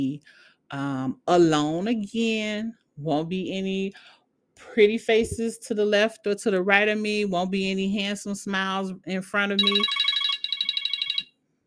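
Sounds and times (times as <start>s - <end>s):
speech: 0.0s - 10.0s
mobile phone ringtone electronic trill: 9.6s - 11.4s.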